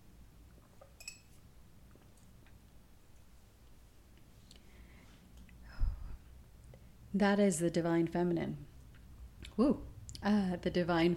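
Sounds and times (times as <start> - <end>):
tea cup clinking: 0.8 - 1.4
speech: 7.2 - 8.7, 9.6 - 11.1.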